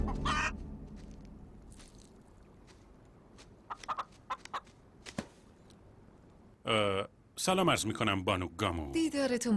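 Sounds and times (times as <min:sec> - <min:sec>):
chicken squawk: 0:00.0 - 0:00.6, 0:03.7 - 0:04.7
chickens clucking: 0:00.0 - 0:00.6, 0:03.6 - 0:04.8
speech: 0:06.7 - 0:09.5.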